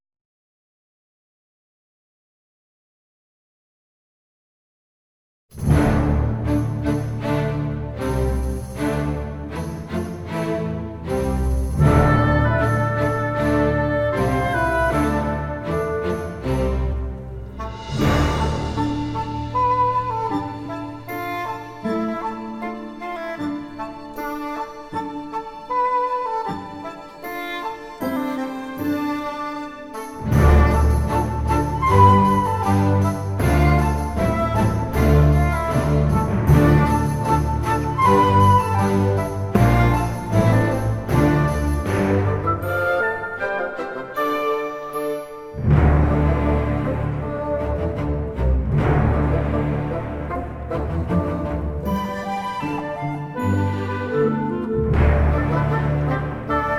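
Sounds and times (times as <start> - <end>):
city background music: 5.5 - 56.7.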